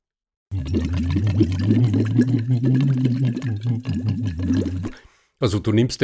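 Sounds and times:
bubbling through a silicone tube in a water bottle: 0.5 - 5.0
speech: 0.5 - 6.0.

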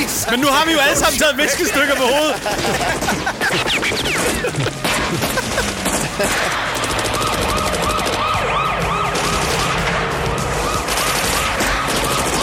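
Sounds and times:
speech: 0.1 - 3.8
laughter: 0.4 - 6.8
action-movie gunfire in rapid bursts: 2.4 - 12.4
wailing siren: 3.5 - 12.4.

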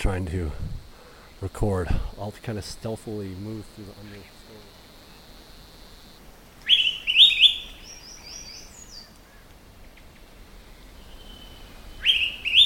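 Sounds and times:
speech: 0.0 - 0.7, 1.4 - 4.4
Araripe manakin singing whistled phrases: 6.6 - 9.4, 11.0 - 12.6.

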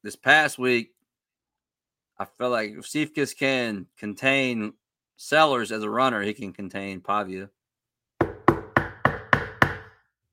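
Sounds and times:
speech: 0.0 - 1.0, 2.2 - 7.6
man knocking on wood: 8.2 - 10.0.

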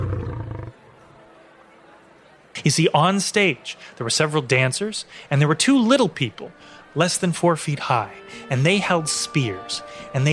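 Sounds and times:
short loud deep roar: 0.0 - 0.8
speech: 2.6 - 10.3.

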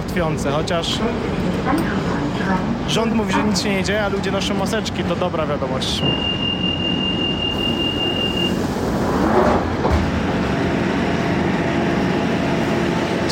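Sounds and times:
rumble inside a moving London Underground train: 0.0 - 13.3
speech: 0.2 - 6.4.

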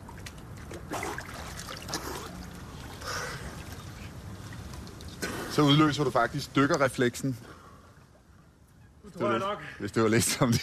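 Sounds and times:
water sloshing and splashing: 0.0 - 6.9
water trickling and dripping: 0.0 - 8.8
speech: 5.6 - 7.5, 9.8 - 10.6.

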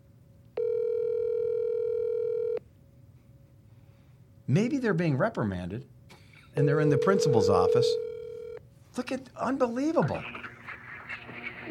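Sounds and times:
electronic telephone ringback tone of an unanswered call: 0.6 - 2.6, 6.6 - 8.6
speech: 4.5 - 6.0, 6.6 - 8.0, 9.0 - 10.4.

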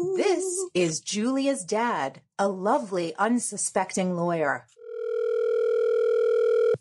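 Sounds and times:
speech: 0.1 - 4.8
telephone ringing: 4.7 - 6.8.

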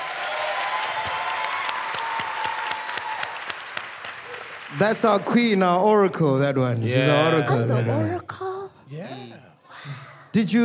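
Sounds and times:
audience applauding: 0.0 - 5.8
speech: 4.7 - 8.4, 10.3 - 10.6.

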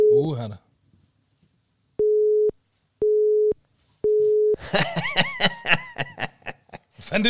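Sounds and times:
telephone line beeps during a call: 0.0 - 0.2, 2.0 - 4.6
speech: 0.2 - 0.6, 4.6 - 5.8, 7.1 - 7.2
people laughing: 4.6 - 7.0.

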